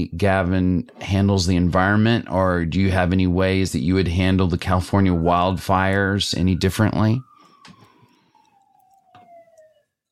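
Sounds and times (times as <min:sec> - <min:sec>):
speech: 0:00.0 - 0:07.3
fire engine siren wailing: 0:03.8 - 0:10.1.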